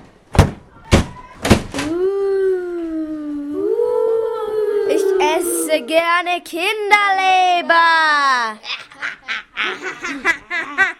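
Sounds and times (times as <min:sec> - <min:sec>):
heavy door thuds: 0:00.3 - 0:01.8
long drawn-out groaning tone: 0:01.9 - 0:06.3
speech: 0:05.9 - 0:08.8
laughter: 0:08.7 - 0:10.9.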